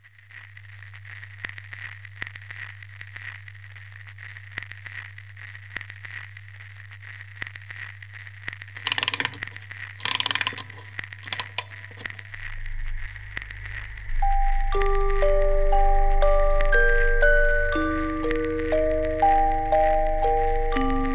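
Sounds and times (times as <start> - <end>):
creepy music box melody: 8.9 - 9.4, 10.0 - 11.8, 13.8 - 21.1.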